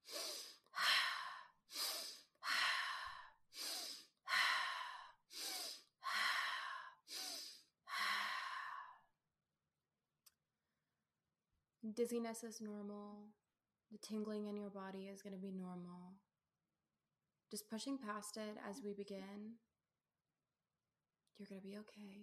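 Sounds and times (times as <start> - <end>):
forceful connected breathing practice: 0.0 - 9.0
speech: 11.8 - 16.3, 17.5 - 19.7, 21.4 - 22.2.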